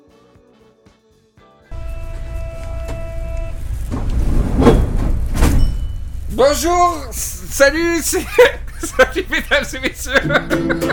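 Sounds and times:
metro train sliding doors hissing: 1.7s - 8.0s
metro train motor hum and whine: 1.7s - 10.9s
speech: 6.4s - 10.9s
laughter: 7.9s - 10.9s.

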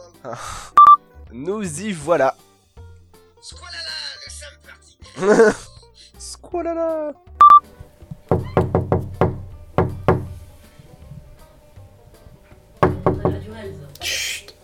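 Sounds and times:
speech: 0.2s - 2.5s, 3.4s - 3.8s, 5.2s - 5.7s, 6.5s - 7.2s, 13.5s - 14.2s
laughter: 5.0s - 6.2s
loud knocking on a door: 8.1s - 10.4s, 12.8s - 13.6s.

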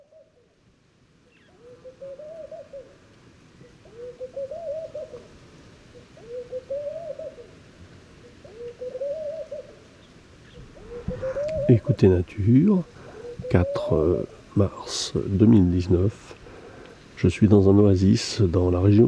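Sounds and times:
male Laughing doves Streptopelia senegalensis cooing at dawn at a desert oasis pool in Mauritania: 0.0s - 0.6s, 1.3s - 19.0s
speech: 11.7s - 16.4s, 17.2s - 19.0s.

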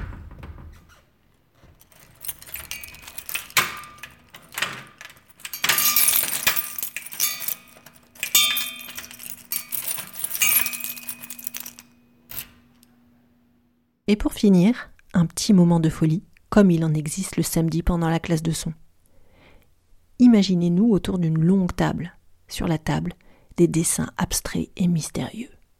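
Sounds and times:
keys jangling and scraping in a door lock: 1.6s - 12.8s
speech: 14.1s - 18.8s, 20.2s - 25.6s.

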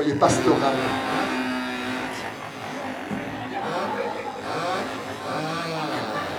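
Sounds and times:
speech: 0.0s - 1.2s
crowd of voices imitating buzzing moped engines: 0.0s - 6.3s
laughter: 0.0s - 6.3s.

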